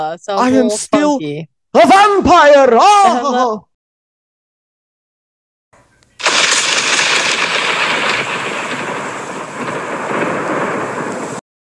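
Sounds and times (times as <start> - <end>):
speech: 0.0 - 3.7
thunder crash: 6.2 - 11.4.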